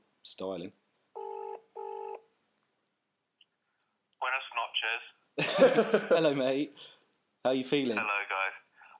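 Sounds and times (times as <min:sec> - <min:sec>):
speech: 0:00.3 - 0:00.8, 0:05.4 - 0:08.3
double-burst telephone ringback tone: 0:01.2 - 0:02.2.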